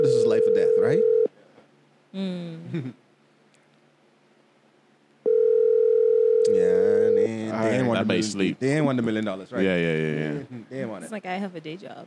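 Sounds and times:
telephone ringback tone of an outgoing phone call: 0.0 - 1.3, 5.3 - 7.3
speech: 2.1 - 3.0, 8.0 - 12.0.

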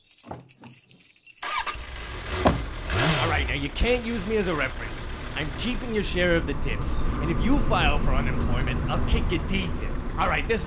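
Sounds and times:
sports car engine starting and revving: 1.4 - 10.6
speech: 3.5 - 10.6.

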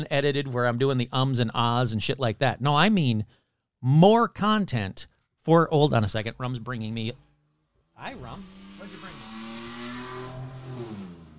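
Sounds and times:
speech: 0.0 - 7.2, 8.0 - 9.2
very loud car roaring past: 8.0 - 11.3.

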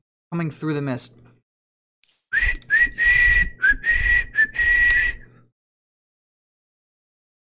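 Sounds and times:
speech: 0.3 - 1.2
shrill whistle blasts: 2.3 - 5.2.

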